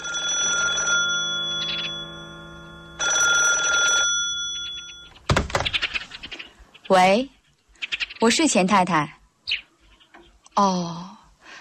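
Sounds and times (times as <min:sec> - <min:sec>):
telephone bell ringing in a home: 0:00.0 - 0:05.2
speech: 0:06.9 - 0:07.4, 0:08.2 - 0:09.6, 0:10.6 - 0:11.1.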